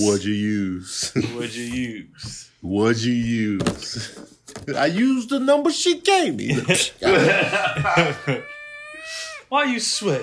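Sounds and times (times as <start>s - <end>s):
speech: 0.0s - 10.2s
laughter: 6.5s - 8.6s
cat yowling after being tossed: 7.9s - 10.2s.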